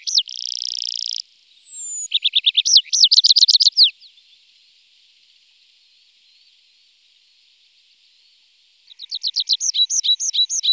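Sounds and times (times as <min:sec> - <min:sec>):
tree pipit singing repeated downslurred notes: 0:00.0 - 0:03.9, 0:09.3 - 0:10.7.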